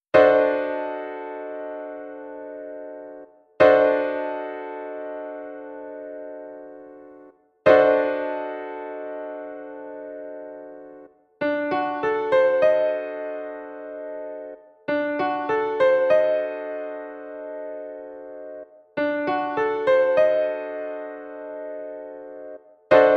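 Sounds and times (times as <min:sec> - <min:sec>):
Db9 piano chord: 0:00.2 - 0:23.1.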